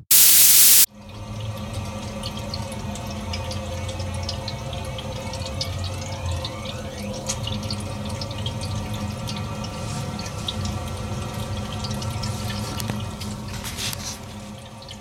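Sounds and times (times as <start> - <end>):
brief loud burst of static: 0.1 - 0.9
steady hiss: 0.1 - 0.9
faint trickling with soft drips and gurgles: 1.7 - 15.0.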